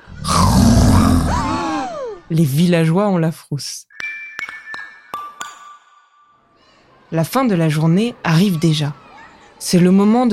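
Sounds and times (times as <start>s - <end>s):
little monster roaring at a village carnival: 0.0s - 2.2s
falling moaning wail: 0.0s - 2.3s
speech: 2.3s - 4.0s, 7.1s - 9.0s, 9.6s - 10.3s.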